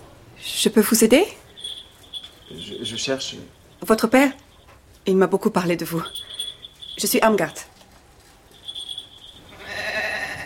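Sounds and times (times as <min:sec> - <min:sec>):
speech: 0:00.4 - 0:01.4, 0:02.8 - 0:04.4, 0:05.0 - 0:06.3, 0:07.0 - 0:07.7
goat bleating: 0:09.5 - 0:10.4.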